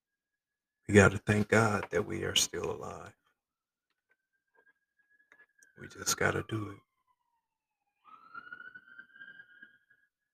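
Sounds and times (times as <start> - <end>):
speech: 0.9 - 3.2, 5.8 - 6.9
emergency vehicle siren wailing downtown: 4.1 - 10.3.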